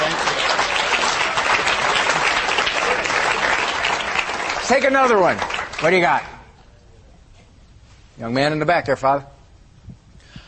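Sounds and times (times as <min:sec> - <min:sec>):
live audience clapping: 0:00.0 - 0:06.5
speech: 0:04.7 - 0:06.3, 0:08.2 - 0:09.3.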